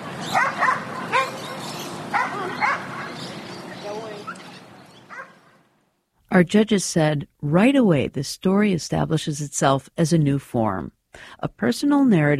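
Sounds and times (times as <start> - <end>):
dog barking at a dog park: 0.2 - 3.3, 5.1 - 5.6
speech: 6.4 - 12.3.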